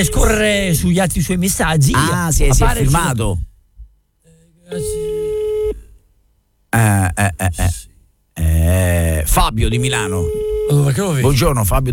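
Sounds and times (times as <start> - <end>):
steady electronic telephone line tone while a phone number is being dialed: 0.0 - 0.6, 4.7 - 5.8, 9.8 - 11.1
speech: 0.0 - 3.5, 4.7 - 5.0, 6.8 - 7.9, 8.7 - 11.9.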